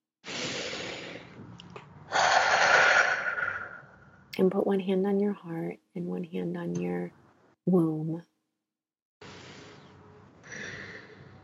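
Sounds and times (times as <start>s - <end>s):
deep breath during a guided calming exercise: 0.2s - 1.4s, 2.1s - 4.2s, 9.2s - 11.4s
speech: 4.4s - 8.3s.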